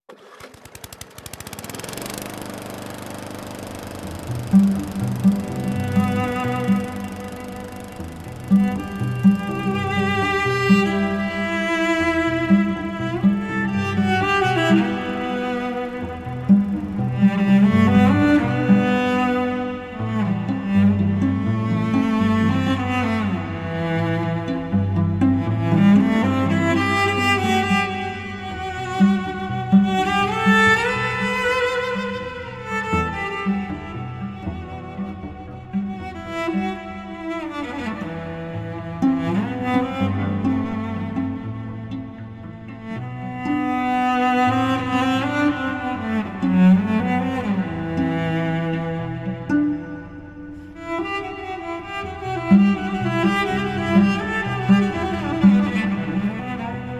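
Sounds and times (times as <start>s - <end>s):
lawnmower: 0.0s - 50.8s, 52.0s - 56.9s
two cellos playing: 2.0s - 56.9s.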